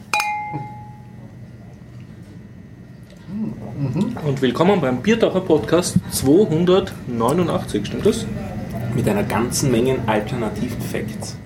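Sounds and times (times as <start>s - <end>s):
beer glasses clinking in a toast: 0.0s - 1.2s
speech: 3.3s - 11.4s.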